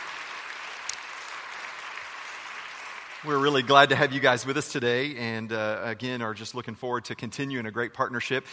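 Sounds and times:
audience applause welcoming school administration: 0.0s - 4.6s
speech: 3.2s - 8.5s.

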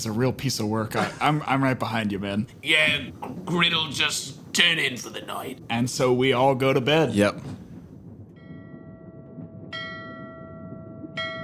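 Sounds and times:
speech: 0.0s - 7.6s
steady low rumble: 0.0s - 11.4s
ship's bell clanging: 8.2s - 11.4s.

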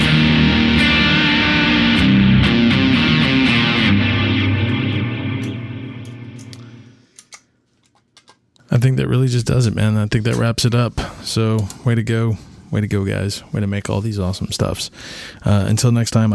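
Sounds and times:
overdriven electric guitar with overdrive and echo pedals playing sustained chords: 0.0s - 7.0s
speech: 9.5s - 16.3s.

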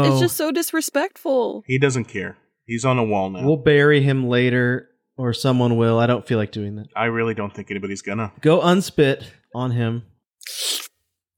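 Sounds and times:
speech: 0.0s - 10.7s
wet slurping mouth sounds of someone slurping on a dead body: 10.4s - 11.0s.

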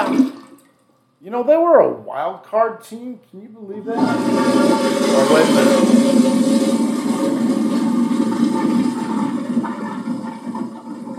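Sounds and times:
toilet flushing: 0.0s - 0.8s, 3.8s - 11.1s
speech: 1.2s - 6.7s.

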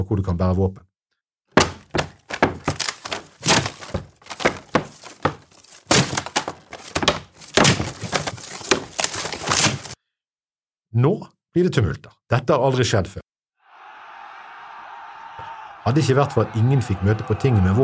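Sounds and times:
speech: 0.0s - 0.9s, 11.0s - 13.2s, 15.9s - 17.8s
heavy thunks, cracks and splintering knocks of wooden posts: 1.6s - 10.0s
wooden boundary posts and bands being torn down: 1.6s - 10.0s.

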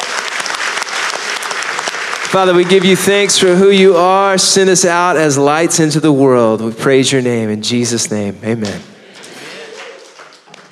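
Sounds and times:
congregation applauding: 0.0s - 3.6s, 9.0s - 10.7s
speech: 2.3s - 8.9s.

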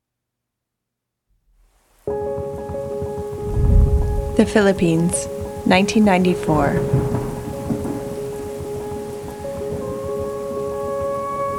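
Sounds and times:
steady rain of a storm: 1.7s - 11.5s
low rumble of thunder: 3.4s - 5.6s, 6.7s - 9.0s
speech: 4.4s - 7.1s.

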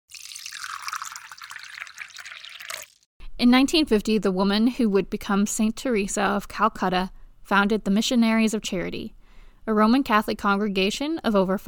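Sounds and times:
tea pouring into a cup: 0.1s - 3.1s
speech: 3.4s - 11.6s.

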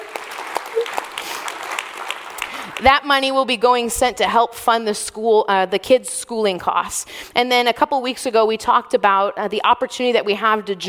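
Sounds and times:
audience applause: 0.0s - 2.9s
speech: 2.8s - 10.8s.

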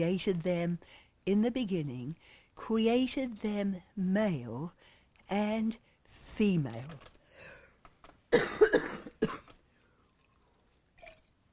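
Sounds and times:
speech: 0.0s - 7.1s, 8.3s - 8.6s
person coughing: 8.3s - 9.6s.

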